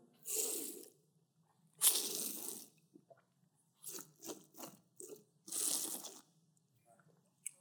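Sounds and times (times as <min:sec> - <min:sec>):
slurping water and air through a straw: 0:00.3 - 0:00.9, 0:01.8 - 0:02.7, 0:03.8 - 0:06.2.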